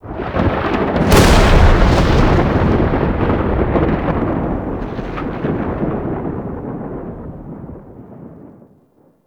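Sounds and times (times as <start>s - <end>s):
thunder clap in the sky: 0.0s - 8.5s.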